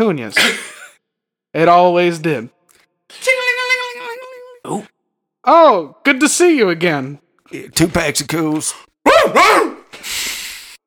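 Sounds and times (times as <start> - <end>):
speech: 0.0 - 0.7, 1.5 - 3.3, 4.7 - 10.2
dog barking: 9.1 - 9.9.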